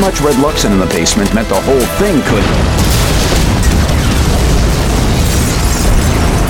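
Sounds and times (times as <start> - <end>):
speech: 0.0 - 2.8
loud explosion boom rolling into a sustained roar: 2.2 - 6.4.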